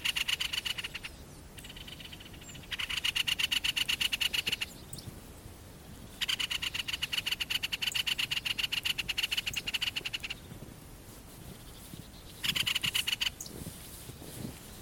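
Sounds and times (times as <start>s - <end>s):
great spotted woodpecker giving harsh scolding rattling chatter: 0.0s - 5.0s, 6.1s - 10.5s, 12.3s - 13.6s.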